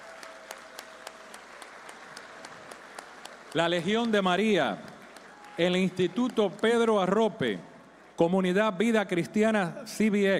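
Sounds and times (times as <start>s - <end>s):
audience applause: 0.0s - 8.2s
speech: 3.6s - 4.9s, 5.6s - 10.3s.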